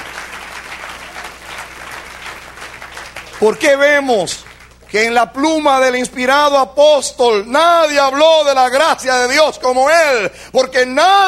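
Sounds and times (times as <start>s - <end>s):
church congregation applauding: 0.0s - 6.6s
speech: 3.4s - 11.2s.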